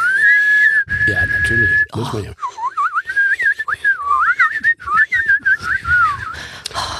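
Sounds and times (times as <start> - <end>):
person whistling a wavering tune while inhaling: 0.0 - 1.5, 2.4 - 6.8
speech: 1.5 - 2.4.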